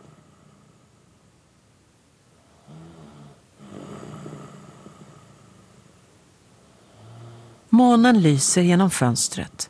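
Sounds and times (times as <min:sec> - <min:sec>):
man snoring in his sleep: 0:00.0 - 0:00.9, 0:02.4 - 0:05.7, 0:06.7 - 0:07.7
steady low hiss: 0:00.0 - 0:09.6
speech: 0:07.8 - 0:09.6.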